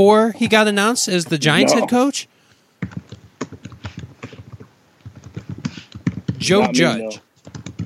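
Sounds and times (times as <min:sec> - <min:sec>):
speech: 0:00.0 - 0:03.1, 0:06.4 - 0:07.3
rapid typing on a computer keyboard: 0:02.8 - 0:06.5, 0:07.4 - 0:07.8.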